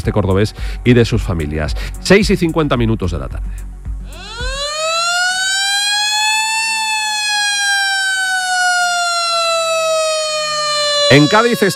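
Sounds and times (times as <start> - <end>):
speech: 0.0 - 3.7, 11.1 - 11.7
tsunami alert siren wailing: 4.1 - 11.7.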